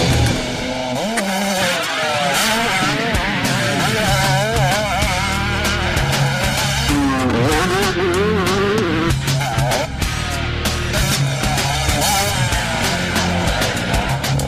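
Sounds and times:
motocross dirt bike engine revving on a private track: 0.0s - 14.4s.

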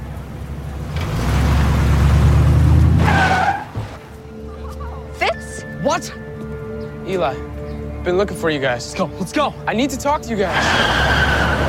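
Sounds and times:
car engine revving as it is driven off: 0.0s - 3.8s, 10.4s - 11.6s
car tyres squealing and skidding: 2.9s - 3.8s, 10.4s - 11.6s
speech: 5.9s - 6.2s, 7.1s - 11.2s.

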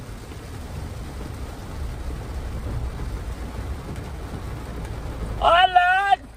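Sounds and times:
heavy rain during a storm: 0.0s - 6.3s
thunder rumbling: 0.0s - 6.3s.

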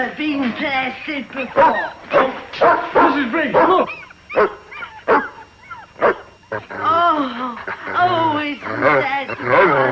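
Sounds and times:
speech: 0.0s - 5.3s, 6.0s - 9.9s
dog growling and snarling: 6.4s - 9.9s.

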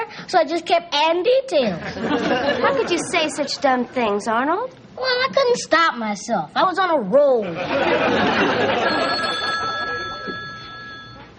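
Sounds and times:
busy hum: 0.0s - 11.3s
speech: 0.3s - 9.3s
laughter: 1.8s - 3.7s, 7.4s - 10.3s
telephone bell ringing: 8.5s - 11.3s.

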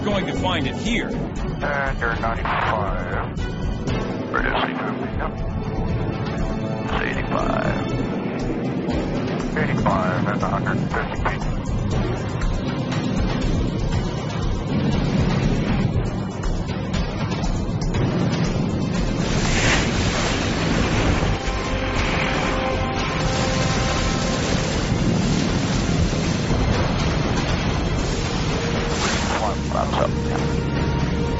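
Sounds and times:
water bomber aircraft engine drone: 0.0s - 31.3s
speech: 0.1s - 3.8s, 4.4s - 5.7s, 6.9s - 7.9s, 8.6s - 14.0s
rushing water and spray from water bomber aircraft skimming the surface: 8.4s - 31.3s.

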